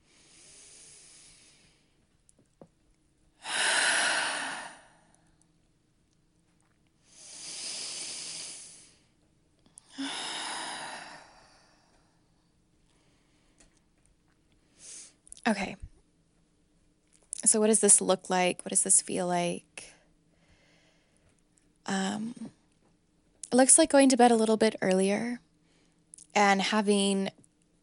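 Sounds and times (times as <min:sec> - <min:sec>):
slow deep breaths during a guided stretch: 0:00.0 - 0:02.1, 0:03.4 - 0:05.4, 0:07.0 - 0:13.8, 0:20.3 - 0:21.4
speech: 0:15.5 - 0:15.8, 0:17.5 - 0:19.9, 0:23.6 - 0:25.4, 0:26.4 - 0:27.4.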